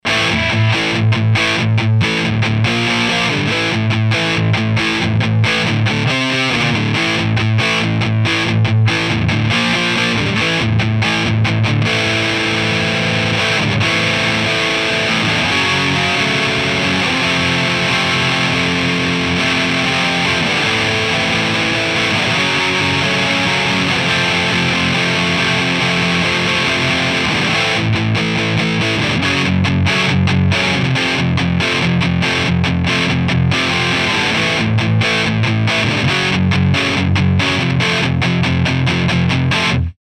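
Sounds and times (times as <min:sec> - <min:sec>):
Gemini 5 tube amp distortion: 0:00.0 - 0:39.9.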